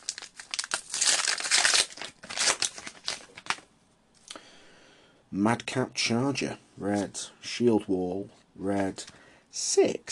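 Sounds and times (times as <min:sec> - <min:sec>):
crinkly plastic trading card booster pack wrapper torn open and crumpled: 0:00.0 - 0:03.7
speech: 0:05.3 - 0:10.1.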